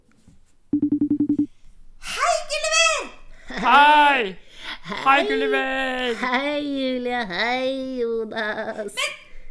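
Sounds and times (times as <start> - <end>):
video call ringtone of identical electronic beeps: 0.8 - 1.5
speech: 3.6 - 9.2.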